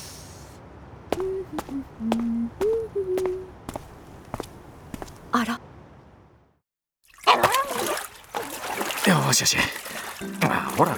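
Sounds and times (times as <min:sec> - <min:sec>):
water splashing while a dog is being washed: 0:01.1 - 0:05.4, 0:07.0 - 0:10.9
speech: 0:01.2 - 0:03.6, 0:05.3 - 0:05.6, 0:09.3 - 0:10.9.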